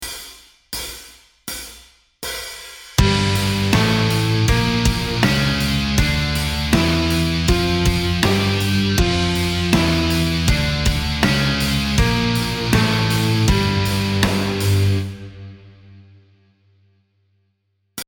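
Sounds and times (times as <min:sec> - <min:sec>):
music in G Dorian mode: 0:03.0 - 0:16.2.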